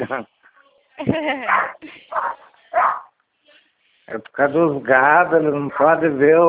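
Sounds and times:
speech: 0.0 - 2.8, 4.1 - 6.4
angry dog barking with a strained yelping edge: 1.5 - 3.1, 5.7 - 6.0.

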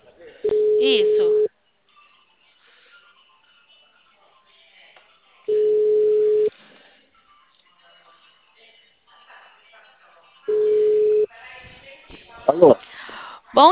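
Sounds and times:
electronic telephone ringback tone during outgoing call: 0.4 - 1.5, 5.5 - 6.5, 10.5 - 11.3
speech: 12.5 - 12.9, 13.5 - 13.7.

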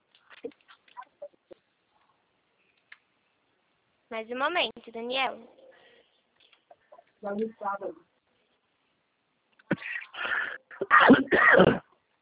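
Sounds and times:
speech: 4.1 - 5.6, 7.2 - 8.1
person having a harsh coughing fit: 9.7 - 11.9.

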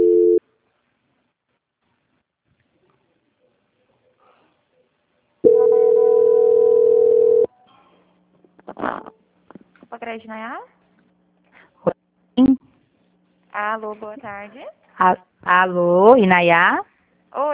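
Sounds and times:
steady telephone tone during a call transfer: 0.0 - 0.4, 5.4 - 7.5
telephone beep during a call transfer: 5.5 - 7.5
speech: 10.1 - 10.8, 13.6 - 17.5.

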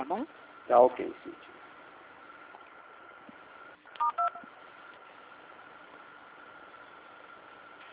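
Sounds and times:
speech: 0.0 - 1.5
touch-tone dialing beeps during a telephone call transfer: 4.0 - 4.4
faint narrow-band telephone line hiss: 4.0 - 4.5.

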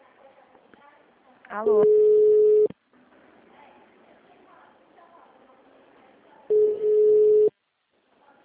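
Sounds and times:
speech: 1.5 - 2.1
telephone ringback tone while a call is placed: 1.8 - 2.7, 6.5 - 7.5.

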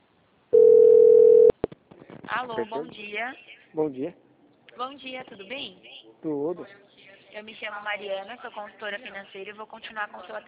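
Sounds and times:
telephone tone while a call is being placed: 0.5 - 1.5
speech: 2.4 - 10.4.

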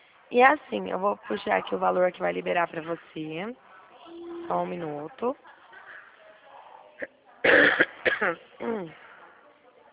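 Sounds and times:
speech: 0.3 - 3.6, 4.5 - 5.6, 7.0 - 9.0
person coughing: 7.5 - 8.8.

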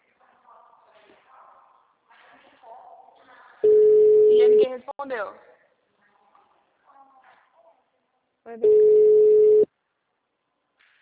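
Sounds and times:
telephone call ringing tone with no answer: 3.6 - 4.7, 8.6 - 9.7
speech: 5.0 - 5.5, 8.5 - 9.0.

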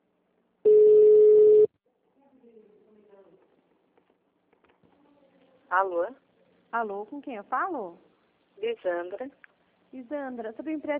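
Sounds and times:
telephone tone after a dropped call: 0.7 - 1.7
speech: 5.8 - 10.9.

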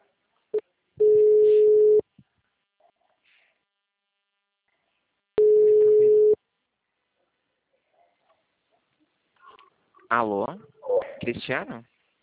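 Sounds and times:
telephone busy tone beeps after a dropped call: 1.0 - 2.0, 5.4 - 6.4
speech: 10.1 - 11.9.

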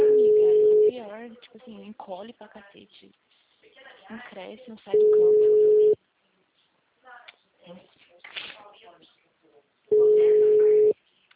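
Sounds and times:
telephone call tone while dialing: 0.0 - 0.9, 5.0 - 6.0, 9.9 - 11.0
speech: 2.2 - 5.9, 7.7 - 8.0.

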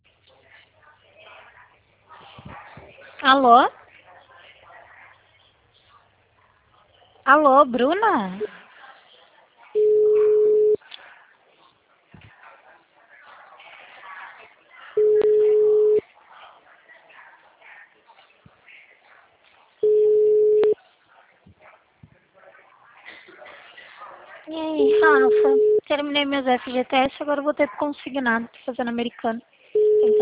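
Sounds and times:
faint murmur: 0.0 - 30.2
speech: 3.2 - 3.8, 7.3 - 8.6, 26.2 - 30.2
telephone busy signal with all lines busy: 9.8 - 10.8, 15.0 - 16.0, 19.8 - 20.8, 24.8 - 25.8, 29.8 - 30.2.

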